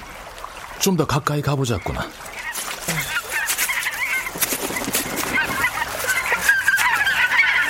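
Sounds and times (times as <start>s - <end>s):
speech: 0.8s - 3.0s
flock of wild geese honking by a river: 1.8s - 7.6s
wild geese wingbeat-like flutter: 2.2s - 7.6s.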